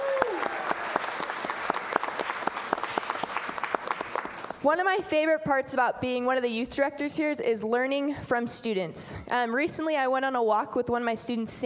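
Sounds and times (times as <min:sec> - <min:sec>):
audience clapping for graduating students: 0:00.0 - 0:04.6
speech: 0:04.6 - 0:11.6.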